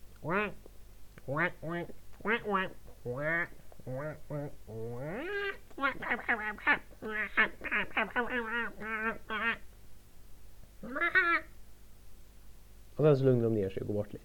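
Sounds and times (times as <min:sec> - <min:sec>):
person imitating duck quacks: 0:00.2 - 0:00.6, 0:01.2 - 0:09.7, 0:10.8 - 0:11.6
speech: 0:00.2 - 0:00.6, 0:01.3 - 0:09.6, 0:10.8 - 0:11.5, 0:13.0 - 0:14.2.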